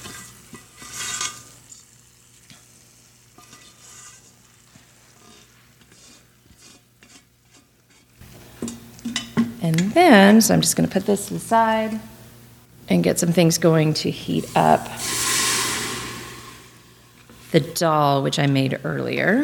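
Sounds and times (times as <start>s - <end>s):
stirring and scraping: 0.0s - 1.8s, 2.5s - 9.4s, 14.2s - 17.6s
hot oil tempering sizzling on yogurt: 0.0s - 9.0s, 14.1s - 17.5s
speech: 9.7s - 12.2s, 12.9s - 15.2s, 17.5s - 19.4s.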